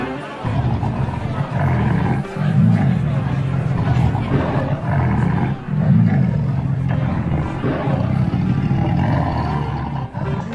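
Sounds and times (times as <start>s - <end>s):
lions roaring and growling: 0.2s - 10.5s.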